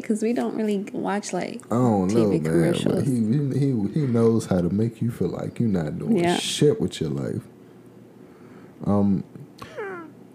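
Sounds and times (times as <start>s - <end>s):
speech: 0.0s - 7.5s, 8.8s - 9.7s
faint noise: 0.0s - 10.3s
cat meowing: 9.7s - 10.2s.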